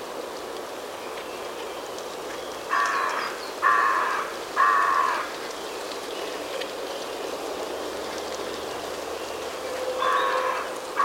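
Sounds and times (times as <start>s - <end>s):
steady background hiss: 0.0s - 11.0s
carrion crow Corvus corone giving harsh rasping caws: 2.7s - 5.4s, 10.0s - 11.0s.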